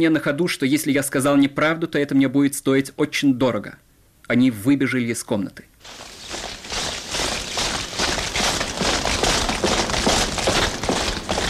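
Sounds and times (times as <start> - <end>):
speech: 0.0 - 6.1
many soldiers' boots marching across a courtyard: 5.8 - 11.4.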